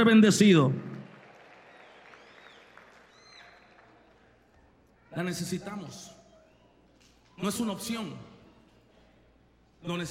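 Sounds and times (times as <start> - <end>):
speech: 0.0 - 0.9, 5.2 - 6.2, 7.4 - 8.3, 9.8 - 10.0
audience applause at a church service: 1.0 - 4.8
faint whistles: 1.8 - 3.8, 6.0 - 7.7.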